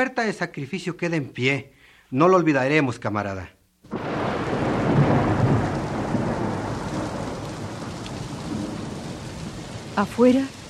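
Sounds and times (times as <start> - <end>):
speech: 0.0 - 3.6, 10.0 - 10.6
heavy rain pouring down: 3.9 - 10.6.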